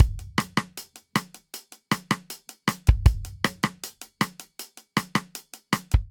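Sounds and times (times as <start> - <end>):
drum beat in a drum booth: 0.0 - 6.0.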